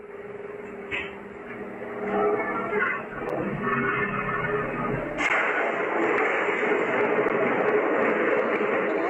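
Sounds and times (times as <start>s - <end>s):
quieter indoor sound: 0.0s - 9.0s
crackling and hissing from burst electric fan: 4.4s - 9.0s
sharp bang from an electric fan bursting: 5.1s - 8.5s.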